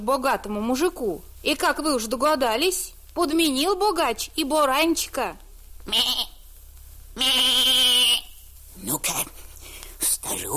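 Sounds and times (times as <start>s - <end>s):
speech: 0.0s - 6.4s, 7.2s - 8.2s, 8.8s - 9.4s, 10.2s - 10.5s
lamb bleating: 5.8s - 6.4s, 7.2s - 8.4s.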